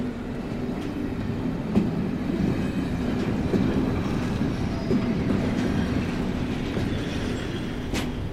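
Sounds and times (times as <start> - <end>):
low rumble of trains in a railway station: 0.0 - 8.3.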